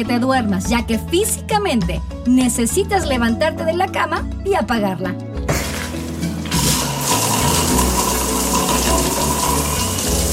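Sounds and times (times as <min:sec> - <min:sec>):
speech: 0:00.0 - 0:05.3
shower water running: 0:05.5 - 0:10.3.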